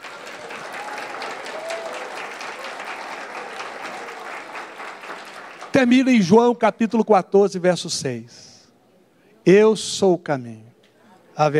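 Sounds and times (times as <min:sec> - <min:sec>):
congregation applauding: 0:00.0 - 0:06.2
speech: 0:05.8 - 0:08.5, 0:09.5 - 0:10.7, 0:11.4 - 0:11.5.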